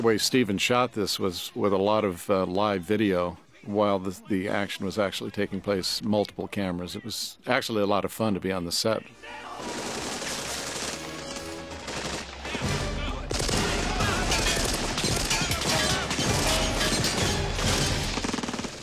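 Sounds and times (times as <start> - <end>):
speech: 0.0 - 9.8
rapid gunfire in a movie battle scene: 9.5 - 18.8.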